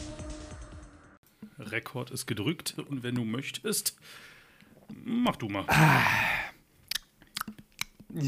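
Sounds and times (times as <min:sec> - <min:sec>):
speech: 0:01.7 - 0:06.3
chewing sounds: 0:06.8 - 0:08.1
wet mouth smacking and lip-smacking: 0:06.8 - 0:08.1.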